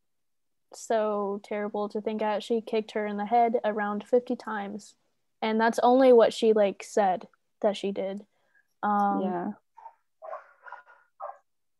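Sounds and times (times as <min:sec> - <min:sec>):
speech: 0:00.7 - 0:09.6
person imitating a dog with a whining yelp: 0:10.2 - 0:10.4.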